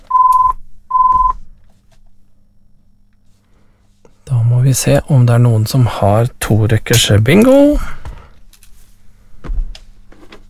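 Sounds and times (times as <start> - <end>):
telephone ringing with electronic tone bursts: 0.1 - 1.3
speech: 4.7 - 8.0.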